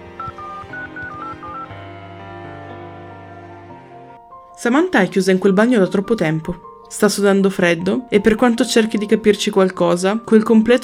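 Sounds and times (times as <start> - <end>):
steady musical backdrop: 0.0 - 10.8
short phone keypad beeps: 0.2 - 1.8
speech: 4.6 - 10.8.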